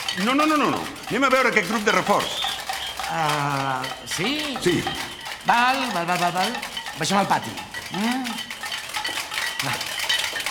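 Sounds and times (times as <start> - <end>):
pots, lids and cutlery banged rhythmically by many hands: 0.0 - 10.4
voices calling out: 0.0 - 10.4
speech: 0.2 - 2.5, 3.1 - 8.4, 9.6 - 9.8.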